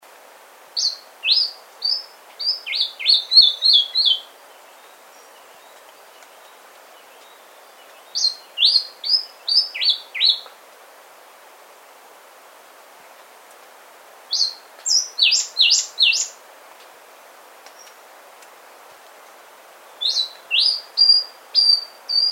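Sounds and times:
white-rimmed brush finch calling: 0:00.8 - 0:05.0, 0:07.0 - 0:10.5, 0:14.3 - 0:16.4, 0:20.0 - 0:22.2.

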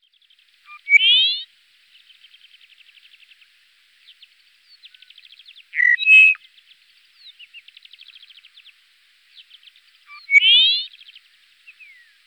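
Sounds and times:
Dupont's lark calling: 0:00.7 - 0:01.5, 0:05.8 - 0:06.4, 0:10.1 - 0:11.0.

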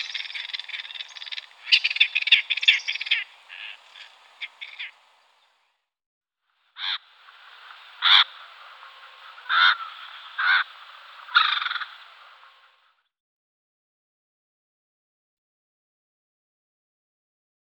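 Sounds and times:
great spotted cuckoo harsh rasping chatter calls: 0:00.0 - 0:05.0, 0:09.3 - 0:12.0.

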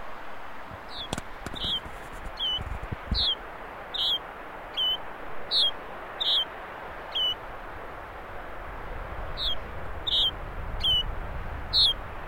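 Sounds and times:
background hiss: 0:00.0 - 0:12.2
Yellow-bridled finch calls: 0:00.8 - 0:06.5, 0:07.1 - 0:07.4, 0:09.4 - 0:11.1, 0:11.7 - 0:12.0.

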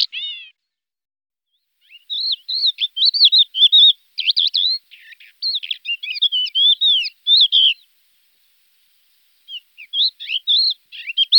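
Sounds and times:
crested lark song: 0:00.0 - 0:00.6, 0:01.6 - 0:11.3.

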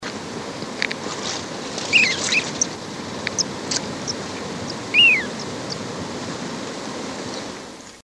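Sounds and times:
Magellanic plover: 0:01.8 - 0:08.0.

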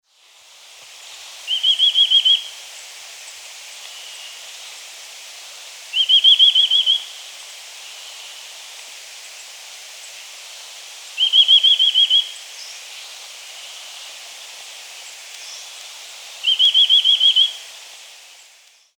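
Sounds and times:
chestnut-vented nuthatch calling: 0:01.5 - 0:02.6, 0:05.9 - 0:08.3, 0:11.2 - 0:14.2, 0:15.1 - 0:17.7.

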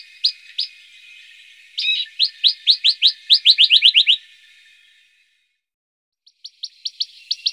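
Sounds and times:
Western rock nuthatch calling: 0:01.8 - 0:04.2.

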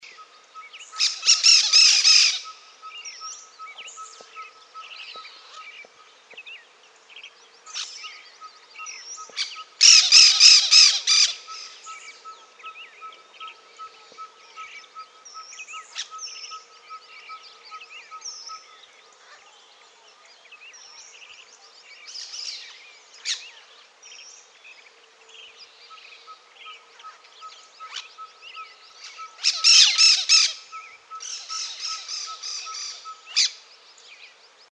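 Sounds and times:
cactus parakeet calling: 0:00.9 - 0:05.7, 0:08.8 - 0:19.4, 0:26.1 - 0:33.6.

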